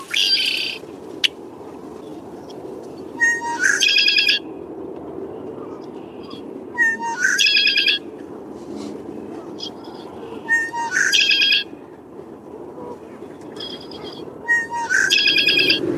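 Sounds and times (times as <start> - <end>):
male Red-winged Blackbird song with buzzy gurgling trill in wetlands: 0.0 - 1.4, 3.2 - 4.4, 6.2 - 8.0, 9.5 - 11.7, 13.4 - 15.8.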